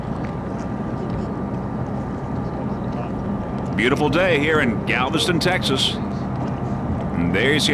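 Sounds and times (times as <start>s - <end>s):
offshore racing powerboat engines roaring: 0.0s - 7.7s
speech: 3.8s - 6.2s, 7.3s - 7.7s.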